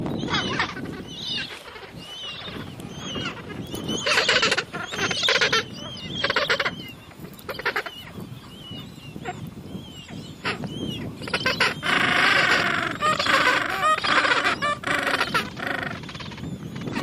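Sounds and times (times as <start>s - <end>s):
gentoo penguins calling: 0.2s - 8.2s, 10.3s - 17.0s.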